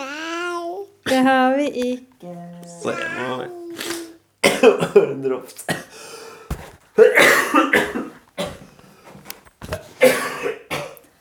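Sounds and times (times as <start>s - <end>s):
speech: 1.1s - 3.6s, 4.6s - 5.8s, 7.0s - 7.9s
man coughing heavily in harsh wet bursts: 4.4s - 6.1s, 7.0s - 8.6s, 10.0s - 11.0s
man's gasping breaths: 5.9s - 6.5s.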